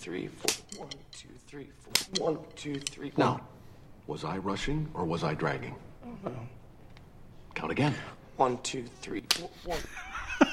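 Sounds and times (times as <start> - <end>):
speech: 0.0 - 6.6, 7.6 - 10.0
face slaps in a film scene: 0.4 - 0.7, 9.3 - 9.5.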